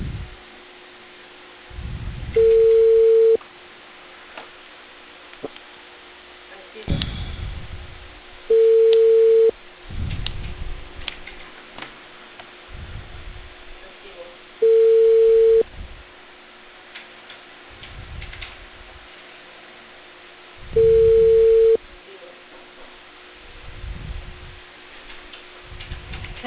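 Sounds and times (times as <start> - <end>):
telephone line beeps while placing a call: 2.4 - 3.4, 8.5 - 9.5, 14.6 - 15.7, 20.7 - 21.8.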